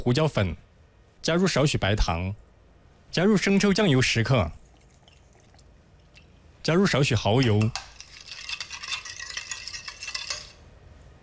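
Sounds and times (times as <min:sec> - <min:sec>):
speech: 0:00.0 - 0:00.6, 0:01.2 - 0:02.4, 0:03.1 - 0:04.6, 0:06.6 - 0:07.9
spoon stirring seasoned mixture with potato starch in a bowl: 0:04.6 - 0:06.3, 0:07.1 - 0:10.7.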